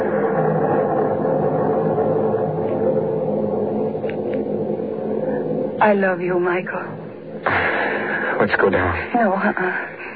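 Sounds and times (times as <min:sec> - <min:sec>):
loud sustained low rumble: 0:00.0 - 0:10.1
speech: 0:05.8 - 0:07.0, 0:08.4 - 0:10.0.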